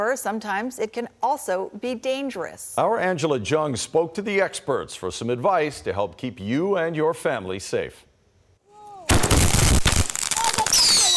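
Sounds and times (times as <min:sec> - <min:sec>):
speech: 0:00.0 - 0:08.1
fireworks whistling at night in Vancouver: 0:09.1 - 0:11.1.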